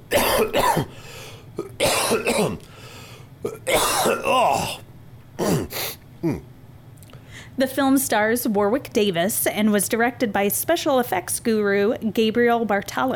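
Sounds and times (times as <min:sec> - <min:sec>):
person coughing harshly: 0:00.1 - 0:02.7, 0:03.4 - 0:04.8, 0:05.4 - 0:06.5
speech: 0:00.4 - 0:02.7, 0:07.6 - 0:13.1
throat clearing: 0:01.6 - 0:02.7, 0:03.4 - 0:04.8, 0:05.4 - 0:06.5.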